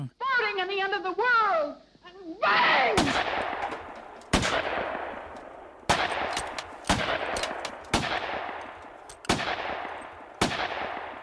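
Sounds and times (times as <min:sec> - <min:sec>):
speech: 0:00.6 - 0:03.5
gunshots fired at a painting canvas as an art production: 0:03.0 - 0:11.2.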